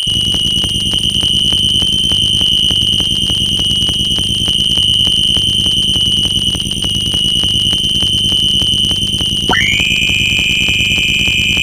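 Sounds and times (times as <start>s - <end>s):
inharmonic overtones: 0.1s - 11.6s.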